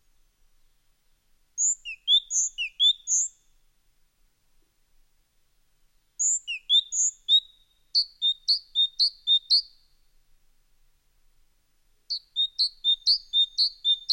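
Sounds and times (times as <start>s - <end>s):
great tit singing whistled phrases: 1.6s - 3.4s, 6.2s - 9.8s, 12.1s - 14.1s.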